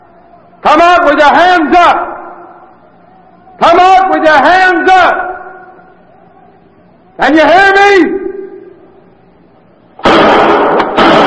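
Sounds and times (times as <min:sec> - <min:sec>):
speech: 0:00.6 - 0:02.1, 0:03.6 - 0:05.3, 0:07.2 - 0:08.3
gunshots fired wildly from a lower window: 0:10.0 - 0:11.2.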